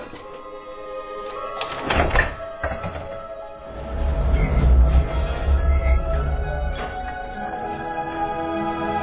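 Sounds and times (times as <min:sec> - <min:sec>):
heavy door creaking open: 0:01.6 - 0:08.5
heavy door thunks: 0:01.7 - 0:03.1
low rumbling scrape of a heavy door swinging: 0:03.6 - 0:08.9.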